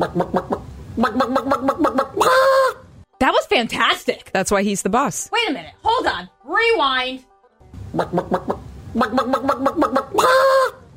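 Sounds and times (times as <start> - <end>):
speech: 0.0 - 0.5, 3.6 - 7.3, 7.9 - 10.8
man imitating chicken clucking: 0.0 - 2.9, 7.9 - 10.9.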